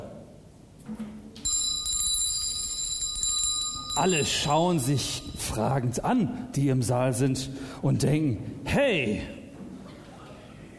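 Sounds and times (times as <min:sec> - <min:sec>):
bell struck with a bright metallic tone: 0:01.4 - 0:06.0
speech: 0:04.0 - 0:09.4.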